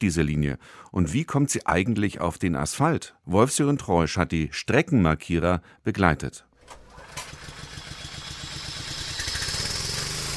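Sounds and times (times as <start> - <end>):
speech: 0.0 - 7.4
small compressor engine pull-started by arm: 6.6 - 10.3.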